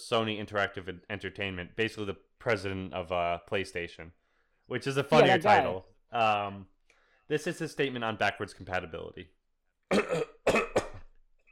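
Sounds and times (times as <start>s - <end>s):
speech: 0.1s - 6.7s, 7.3s - 10.3s
man clearing his throat with rough coughs: 9.9s - 11.0s.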